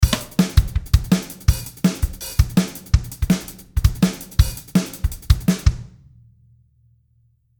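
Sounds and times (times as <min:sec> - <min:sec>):
drum kit: 0:00.0 - 0:06.1.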